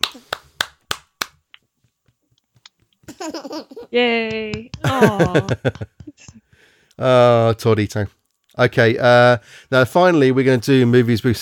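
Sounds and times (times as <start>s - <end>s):
slow polite golf clap: 0.0s - 2.8s, 4.3s - 6.7s
speech: 3.2s - 6.4s, 7.0s - 11.4s
person laughing: 4.8s - 6.4s.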